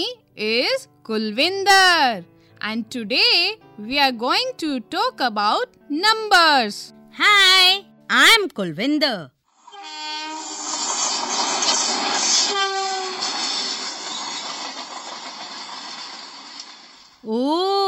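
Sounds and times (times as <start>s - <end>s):
speech: 0.0s - 10.2s, 12.0s - 13.1s, 17.2s - 17.8s
train horn blast: 9.7s - 10.6s, 12.2s - 13.7s
train rumbling along the tracks: 10.5s - 17.1s.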